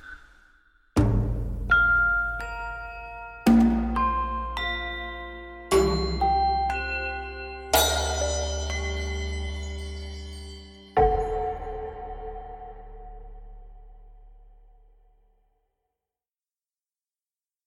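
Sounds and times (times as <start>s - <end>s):
resonant bell struck: 1.7s - 13.7s.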